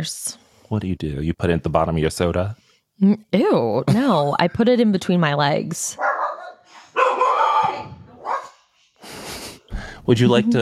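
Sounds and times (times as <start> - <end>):
speech: 0.0 - 6.1, 10.1 - 10.6
dogs barking: 6.0 - 8.7.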